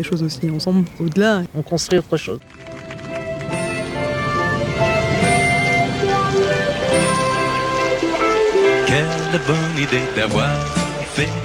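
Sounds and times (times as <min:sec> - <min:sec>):
speech: 0:00.0 - 0:02.8, 0:09.3 - 0:11.4
rain pattering on a roof: 0:00.0 - 0:11.4
low rumble: 0:02.4 - 0:08.2.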